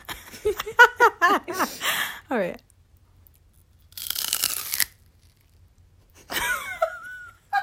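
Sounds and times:
speech: 0.4s - 2.7s
biting into a crunchy raw celery stalk: 3.4s - 5.6s.

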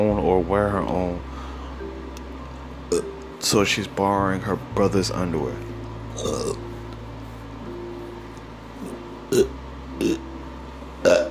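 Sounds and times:
speech: 0.0s - 1.3s, 2.9s - 6.7s, 9.3s - 9.6s
low hum: 0.0s - 11.2s
short guttural burps: 6.2s - 6.6s, 9.3s - 10.2s, 11.0s - 11.2s.

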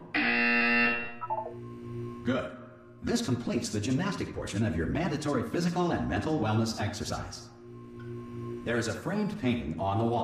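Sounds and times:
loud harsh electronic buzzer: 0.0s - 2.3s, 7.6s - 8.8s
speech: 2.3s - 7.6s, 8.6s - 10.2s.

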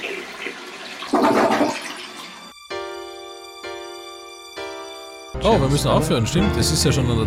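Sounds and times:
toilet flushing: 0.0s - 2.7s
speech: 5.4s - 7.2s.

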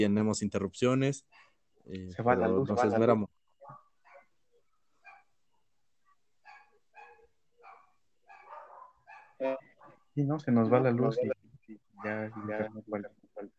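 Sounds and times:
speech: 0.0s - 3.8s, 9.4s - 13.5s
several dogs fighting and barking outside a house: 3.5s - 10.1s.

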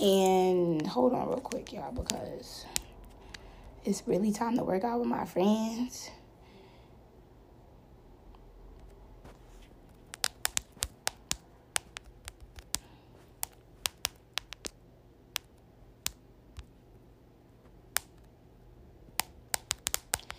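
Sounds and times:
speech: 0.0s - 2.9s, 3.8s - 6.2s
soft hum: 0.0s - 20.3s
typing on a keyboard: 10.0s - 14.8s, 19.2s - 20.3s.

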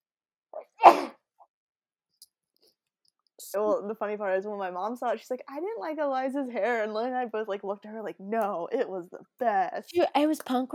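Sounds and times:
person sneezing: 0.6s - 1.2s
speech: 3.5s - 10.7s.

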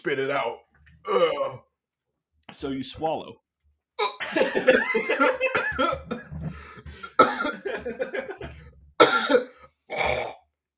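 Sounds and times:
speech: 0.0s - 1.7s, 2.5s - 3.4s, 4.0s - 8.4s
laughter: 4.2s - 8.6s
person coughing after choking on seltzer: 5.4s - 10.3s
person gasping: 6.4s - 7.2s.

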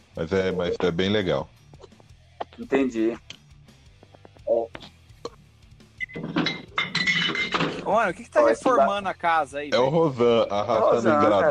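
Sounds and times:
speech: 0.2s - 1.8s, 2.6s - 3.4s, 7.9s - 11.4s
glass beer bottles clinking in a crate: 6.0s - 7.9s
laughter: 9.7s - 11.4s.

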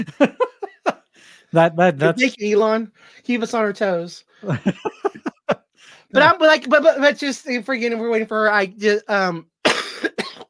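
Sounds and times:
speech: 0.0s - 0.4s, 1.5s - 5.2s, 5.8s - 10.2s
laughter: 0.0s - 1.2s, 4.4s - 6.3s
person coughing: 9.6s - 10.4s.

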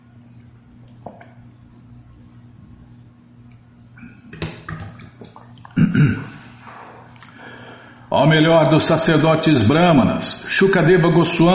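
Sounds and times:
low hum: 0.0s - 11.5s
person sipping and swallowing water: 5.2s - 7.4s
speech: 5.8s - 6.4s, 8.1s - 11.5s.

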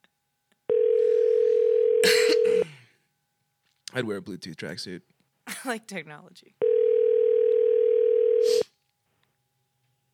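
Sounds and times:
electronic phone ringback tone: 0.7s - 2.6s, 6.6s - 8.6s
speech: 4.0s - 6.6s.

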